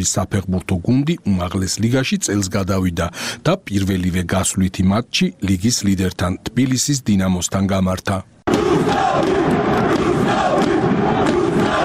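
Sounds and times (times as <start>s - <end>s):
speech: 0.0s - 10.1s
football fans chanting for their team after an away league win: 8.5s - 11.8s.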